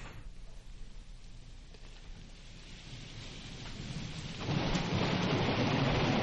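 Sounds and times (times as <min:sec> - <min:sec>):
steady rain: 0:00.0 - 0:06.2
low rolling rumble of thunder: 0:03.6 - 0:06.2.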